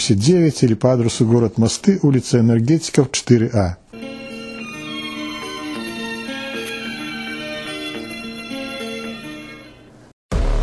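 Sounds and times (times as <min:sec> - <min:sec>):
speech: 0:00.1 - 0:04.0
melodic mobile phone ringtone for an incoming call: 0:04.0 - 0:09.9
brief burst of noise: 0:10.3 - 0:10.6.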